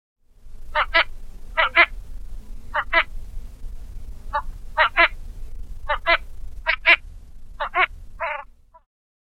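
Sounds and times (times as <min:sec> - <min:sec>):
low steady rumble: 0:00.2 - 0:08.9
Northern shoveler giving nasal clucking calls: 0:00.7 - 0:02.0, 0:02.7 - 0:03.1, 0:04.3 - 0:05.2, 0:05.8 - 0:07.0, 0:07.6 - 0:08.8.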